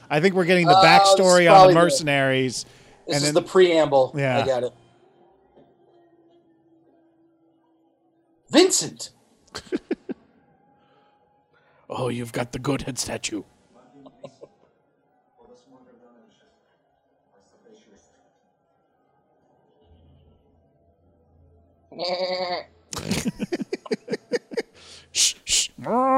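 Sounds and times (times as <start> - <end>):
speech: 0.1 - 4.8, 8.5 - 9.9, 11.9 - 13.5, 22.0 - 24.0, 25.2 - 26.1
laughter: 0.6 - 2.1, 9.5 - 10.4, 13.9 - 14.7, 22.9 - 25.0
goats bleating: 21.9 - 22.7.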